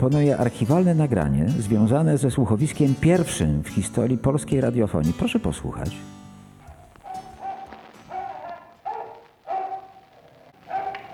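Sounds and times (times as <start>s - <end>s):
speech: 0.0s - 6.2s
dog barking on an old archival recording: 6.6s - 11.1s.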